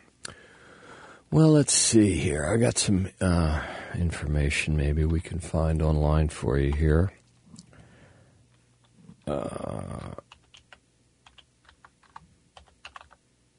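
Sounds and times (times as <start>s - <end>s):
speech: 1.3s - 7.2s, 9.3s - 10.2s
typing on a computer keyboard while entering a website address: 10.1s - 13.5s.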